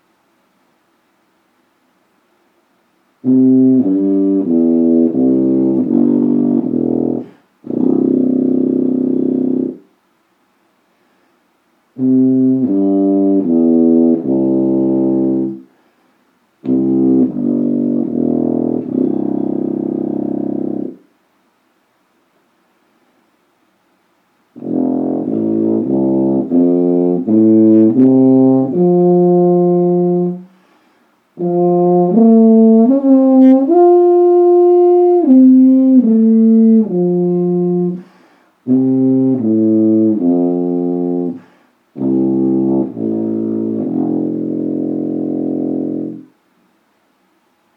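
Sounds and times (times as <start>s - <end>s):
Kanstul 90 CC tuba playing across its range: 3.2s - 9.9s, 12.0s - 15.7s, 16.6s - 21.0s, 24.5s - 30.6s, 31.3s - 46.4s.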